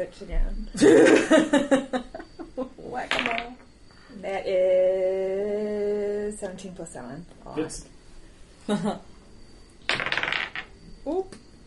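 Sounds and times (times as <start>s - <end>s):
speech: 0.0s - 2.1s, 4.2s - 8.0s, 8.7s - 9.1s
dice clattering on a hard tabletop: 3.1s - 3.7s, 9.9s - 10.8s.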